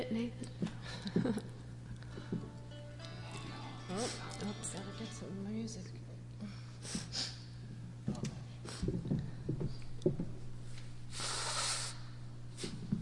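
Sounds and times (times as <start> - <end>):
low hum: 0.0 - 12.9
person blowing nose: 6.8 - 7.5, 11.1 - 12.9.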